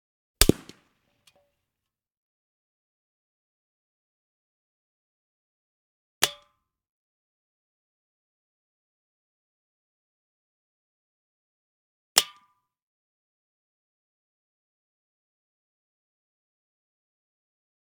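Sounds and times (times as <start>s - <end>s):
bullet hitting tin can: 0.4s - 0.8s.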